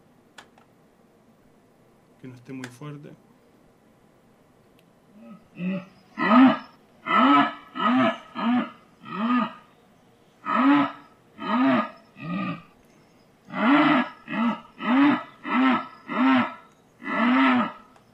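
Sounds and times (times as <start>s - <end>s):
speech: 2.2s - 3.3s, 5.3s - 6.3s
jaguar roaring: 5.1s - 9.7s, 10.4s - 12.8s, 13.5s - 17.9s.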